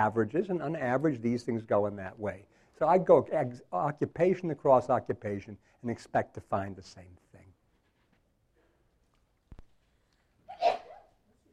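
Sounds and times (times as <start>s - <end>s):
speech: 0.0s - 7.2s
single sneeze with a voiced cry: 10.5s - 11.1s.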